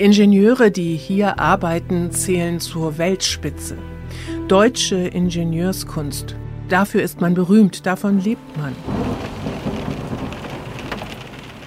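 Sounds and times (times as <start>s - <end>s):
speech: 0.0s - 9.4s
rain drumming on meeting room window glass: 8.6s - 11.6s.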